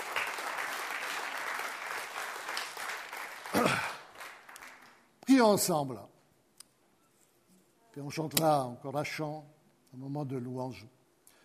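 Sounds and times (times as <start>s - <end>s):
church congregation clapping during a service: 0.0s - 5.1s
speech: 5.4s - 6.1s, 8.0s - 11.0s.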